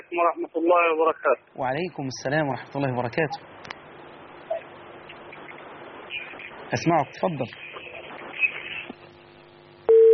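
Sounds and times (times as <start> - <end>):
faint telephone line noise: 0.0 - 10.1
speech: 0.2 - 3.8, 6.7 - 7.7
steady electronic telephone busy tone after a dropped call: 9.9 - 10.1.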